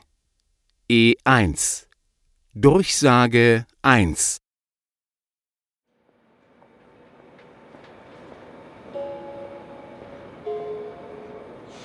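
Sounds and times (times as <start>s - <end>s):
speech: 0.9s - 1.9s, 2.6s - 4.4s
train pulling away from a station platform: 6.1s - 11.8s.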